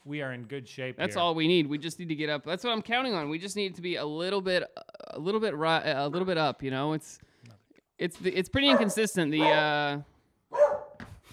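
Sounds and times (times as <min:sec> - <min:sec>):
speech: 0:00.0 - 0:07.3, 0:08.0 - 0:10.1
dog barking and yelping: 0:08.7 - 0:09.8, 0:10.5 - 0:11.0.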